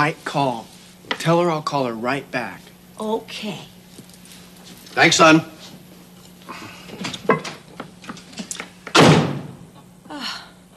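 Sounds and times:
speech: 0.0 - 3.7, 5.0 - 5.5
door slamming shut: 8.9 - 9.6.

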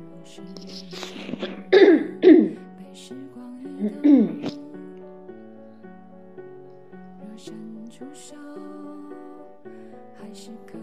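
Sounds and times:
low vocal noises: 0.0 - 10.8
person clearing throat in harsh raspy bursts: 1.4 - 2.6.

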